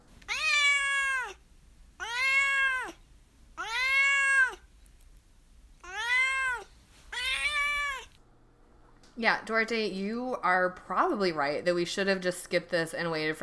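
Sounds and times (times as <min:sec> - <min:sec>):
cat meowing: 0:00.2 - 0:01.4, 0:02.0 - 0:03.0, 0:03.6 - 0:04.7, 0:05.8 - 0:08.2
speech: 0:09.2 - 0:13.4.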